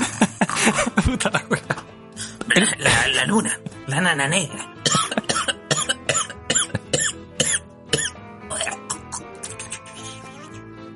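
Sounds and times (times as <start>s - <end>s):
laughter: 0.0s - 1.8s
speech: 1.1s - 1.7s, 2.6s - 4.7s
person in a coughing fit with harsh hacking coughs: 4.8s - 9.9s.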